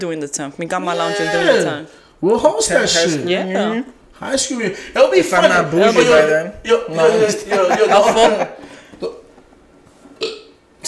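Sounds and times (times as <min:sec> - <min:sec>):
speech: 0:00.0 - 0:09.2
loud drawn-out burp: 0:00.9 - 0:01.7, 0:09.0 - 0:09.3, 0:10.2 - 0:10.6
laughter: 0:06.8 - 0:08.7.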